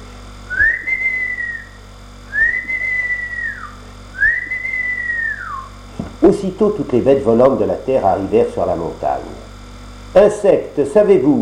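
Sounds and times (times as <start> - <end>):
long steady rising and sliding whistles: 0.5 - 5.8
speech: 6.2 - 9.5, 10.1 - 11.3.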